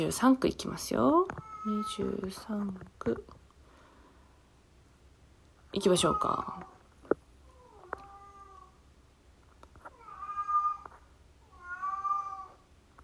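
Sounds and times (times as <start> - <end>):
speech: 0.0 - 3.4, 5.7 - 6.7
cat meowing at night: 1.3 - 2.1, 7.5 - 8.8, 9.8 - 12.7.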